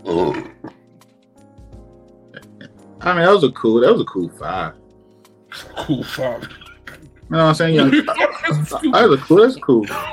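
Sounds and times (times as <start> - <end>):
speech: 0.0 - 0.6, 3.1 - 4.8, 5.9 - 6.6, 7.3 - 10.1
loud burp: 0.0 - 0.9, 2.3 - 2.8
laughter: 5.5 - 10.1.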